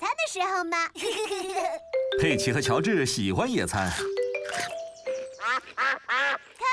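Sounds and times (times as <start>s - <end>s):
speech: 0.4s - 4.7s
ducks quacking at a picnic: 5.2s - 6.7s.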